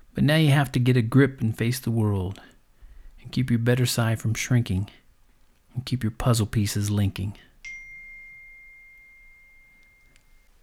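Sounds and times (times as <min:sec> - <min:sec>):
speech: 0:00.2 - 0:02.5, 0:03.2 - 0:05.0, 0:05.8 - 0:07.5
phone message notification chime: 0:07.6 - 0:10.5.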